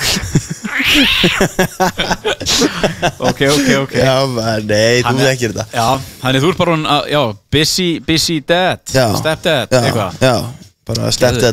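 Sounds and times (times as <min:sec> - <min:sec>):
laughter: 0:00.0 - 0:04.0
speech: 0:00.4 - 0:11.5
small young house cat meowing: 0:00.7 - 0:01.4.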